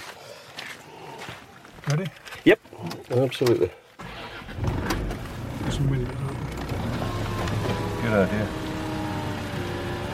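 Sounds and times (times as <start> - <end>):
speech: 1.9 - 3.8, 5.7 - 6.4, 8.0 - 8.6
old derelict wrecked car engine running on an island: 4.0 - 10.1.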